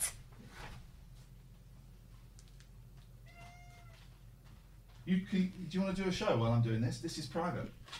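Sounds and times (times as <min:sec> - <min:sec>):
steady low hum: 0:00.0 - 0:07.9
cats meowing agitatedly: 0:03.2 - 0:04.2
speech: 0:05.0 - 0:07.9.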